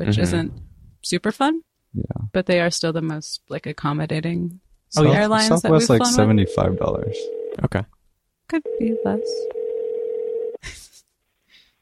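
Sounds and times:
speech: 0.0s - 9.6s
outgoing call phone ringing tone: 5.9s - 7.6s, 8.6s - 10.6s.

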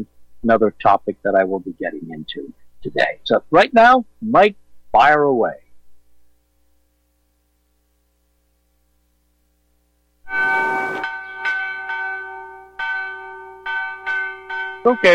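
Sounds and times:
speech: 0.0s - 5.6s, 10.3s - 11.1s, 14.8s - 15.1s
cathedral church bells ringing: 10.3s - 15.1s.

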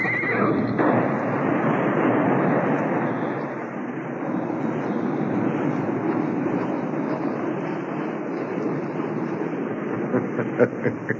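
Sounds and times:
horses whinnying and neighing: 0.0s - 0.7s
horses galloping hard along a trail on a steep riverbank: 0.0s - 11.1s
laughter: 9.9s - 11.1s.

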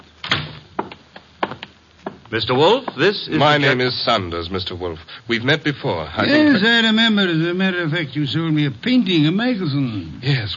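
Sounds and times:
door closing with a solid thud: 0.2s - 0.7s
speech: 2.3s - 10.5s.

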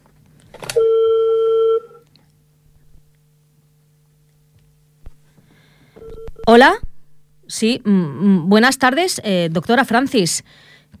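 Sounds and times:
faint low hum: 0.0s - 10.9s
long steady telephone tone of an incoming call: 0.7s - 2.0s, 6.0s - 6.6s
speech: 6.5s - 6.8s, 7.5s - 10.9s.

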